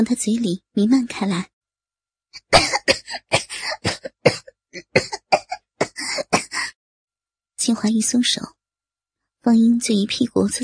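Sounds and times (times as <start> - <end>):
speech: 0.0 - 1.5, 2.3 - 3.8, 5.0 - 5.3, 7.6 - 8.6, 9.4 - 10.6
man coughing hard after choking: 2.4 - 6.7.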